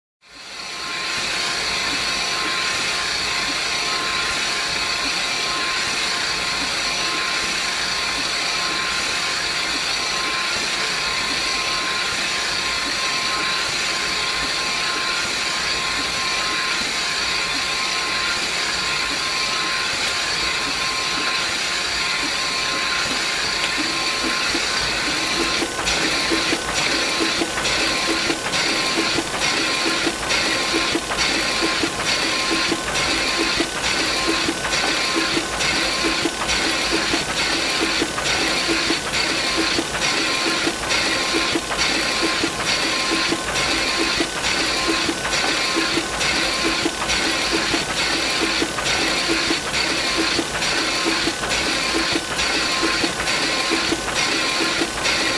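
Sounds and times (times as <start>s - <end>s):
sharpening machine: 0.4s - 55.3s.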